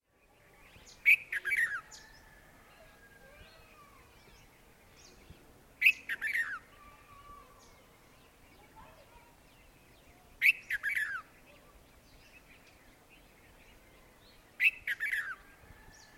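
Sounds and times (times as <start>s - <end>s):
bulbul singing: 4.0s - 13.8s, 14.6s - 15.4s.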